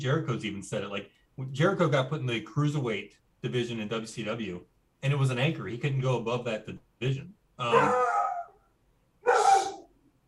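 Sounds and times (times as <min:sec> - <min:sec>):
speech: 0:00.0 - 0:08.2
dog barking: 0:07.7 - 0:08.6, 0:09.2 - 0:09.9.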